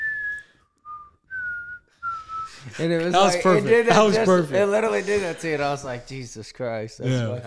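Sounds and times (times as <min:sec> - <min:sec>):
person whistling a tune: 0:00.0 - 0:02.6
speech: 0:02.6 - 0:07.4.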